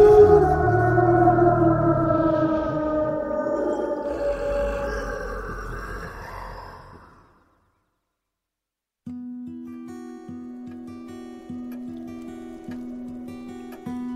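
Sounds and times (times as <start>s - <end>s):
monstrous beast roaring with a low rumbling growl: 0.0s - 7.5s.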